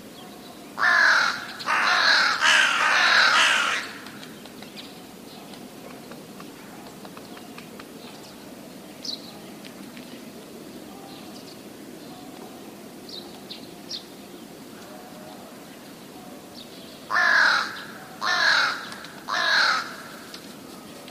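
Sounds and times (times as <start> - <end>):
quiet background noise: 0.0 - 21.1
rook cawing: 0.8 - 4.2, 17.1 - 20.4.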